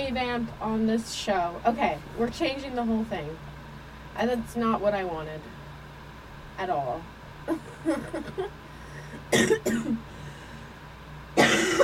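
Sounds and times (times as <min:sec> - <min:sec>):
hum: 0:00.0 - 0:11.8
speech: 0:00.1 - 0:03.5, 0:04.2 - 0:05.6, 0:06.6 - 0:10.1
person coughing: 0:07.5 - 0:10.0, 0:11.4 - 0:11.8.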